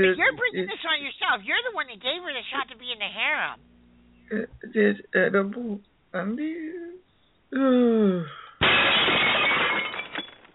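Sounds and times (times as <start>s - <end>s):
speech: 0.0s - 3.7s, 4.3s - 9.6s
glass table shattering: 8.6s - 10.5s.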